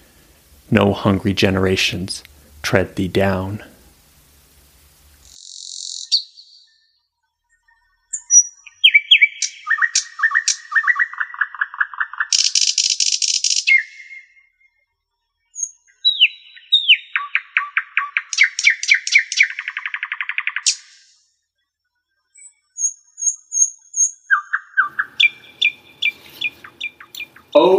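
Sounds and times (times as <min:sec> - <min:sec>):
speech: 0:00.7 - 0:03.7
nightingale singing: 0:05.2 - 0:06.8, 0:07.6 - 0:14.4, 0:15.6 - 0:21.1, 0:22.4 - 0:27.7.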